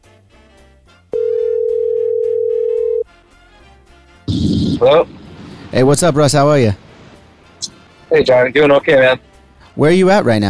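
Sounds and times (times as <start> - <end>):
soft music: 0.0 - 5.1, 5.7 - 10.4
ring tone of an outgoing phone call: 1.2 - 3.1
speech: 4.8 - 6.8, 7.6 - 10.4.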